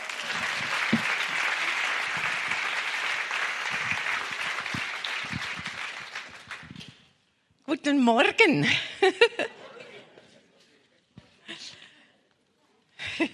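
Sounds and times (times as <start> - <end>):
congregation applauding at a church jubilee service: 0.0 - 6.9
speech: 7.7 - 9.5
laughter: 8.6 - 10.7.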